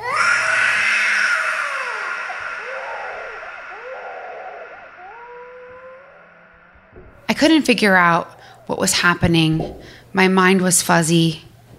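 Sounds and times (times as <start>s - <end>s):
person screaming in long shrill wails: 0.0s - 7.0s
speech: 7.4s - 11.5s.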